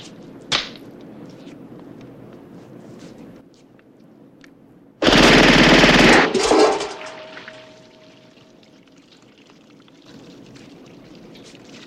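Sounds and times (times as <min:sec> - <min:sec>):
suppressed automatic gunfire from a silenced 9mm Ingram submachine gun into a water-filled can: 0:05.0 - 0:07.3
water splashing in a can: 0:06.4 - 0:11.8.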